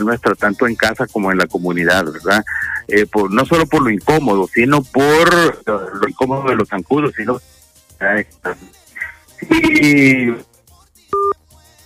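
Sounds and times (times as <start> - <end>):
speech: 0.0 - 8.8, 9.4 - 10.5
telephone busy tone after call is cut off: 11.2 - 11.4.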